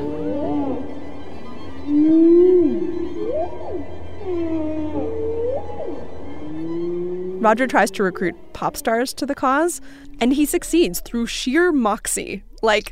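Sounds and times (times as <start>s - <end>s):
humpback whale song moans and whoops: 0.0s - 9.9s
speech: 7.4s - 12.8s.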